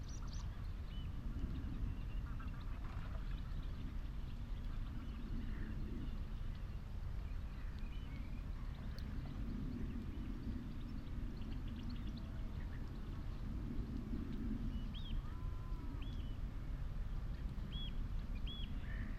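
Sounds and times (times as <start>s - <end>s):
wind on an open marsh: 0.0s - 19.1s.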